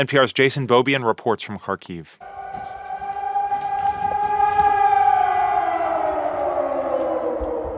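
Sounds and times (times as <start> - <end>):
speech: 0.0 - 2.4
air raid siren wailing in Kharkiv: 2.2 - 7.7.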